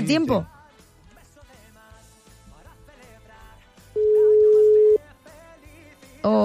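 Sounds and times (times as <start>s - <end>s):
faint music: 0.0s - 6.4s
speech: 0.1s - 0.6s, 6.2s - 6.4s
outgoing-call electronic ringing tone: 4.0s - 5.0s.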